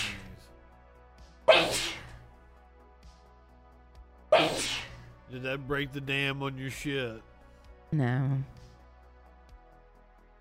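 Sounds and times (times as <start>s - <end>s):
person sneezing: 1.5s - 2.2s, 4.3s - 5.1s
speech: 4.5s - 7.3s, 7.9s - 8.6s.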